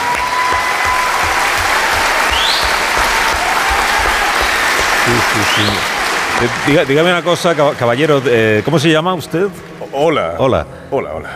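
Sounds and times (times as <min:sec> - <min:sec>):
audience applause with many hands clapping: 0:00.0 - 0:09.3
speech: 0:05.3 - 0:11.3
faint whistle: 0:05.4 - 0:05.9.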